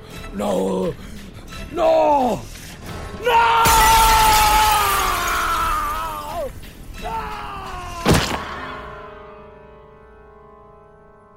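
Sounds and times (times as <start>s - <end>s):
speech: 0.4s - 1.1s, 1.7s - 2.5s
bright ringing window glass fragments tinkling: 3.6s - 6.5s
closed window glass shattering as a man's body crashes through: 3.6s - 6.6s, 8.0s - 8.8s.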